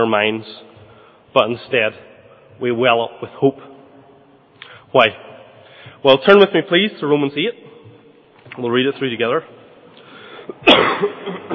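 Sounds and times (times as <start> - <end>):
speech: 0.0 - 0.7, 1.3 - 3.7, 4.9 - 5.3, 6.0 - 7.7, 8.6 - 9.6, 10.5 - 11.5
person coughing with throaty rasp: 10.5 - 11.5.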